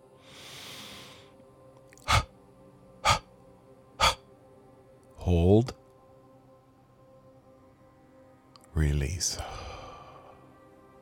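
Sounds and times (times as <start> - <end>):
long steady inhalation in a breathing exercise: 0.2 - 1.4, 2.1 - 2.3, 3.0 - 3.2, 4.0 - 4.2, 9.4 - 10.5
short sharp exhaling spurts in a breathing exercise: 2.1 - 2.3, 3.0 - 3.2, 4.0 - 4.2
speech: 5.3 - 5.8, 8.8 - 9.6.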